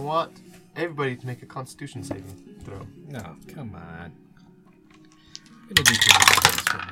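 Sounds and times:
speech: 0.0 - 4.2, 5.7 - 6.9
dice rolling on a hard tabletop: 5.8 - 6.9.

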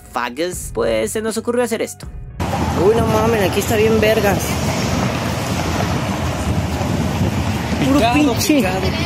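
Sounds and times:
speech: 0.2 - 2.2, 2.8 - 4.8, 7.9 - 9.0
churning water of a choppy sea: 2.4 - 9.0
loud wind rushing: 2.4 - 9.0.

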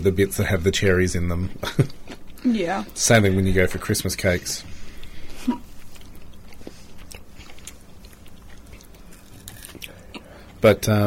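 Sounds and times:
speech: 0.0 - 4.7, 10.6 - 11.0
steady moist chewing of White Christmas slice: 4.7 - 10.6
person biting into a crunchy White Christmas slice: 5.8 - 10.6.

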